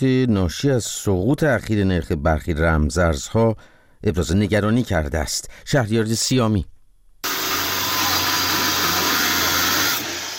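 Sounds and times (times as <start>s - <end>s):
speech: 0.0s - 6.7s
electric saw cutting through entrance: 7.2s - 10.3s.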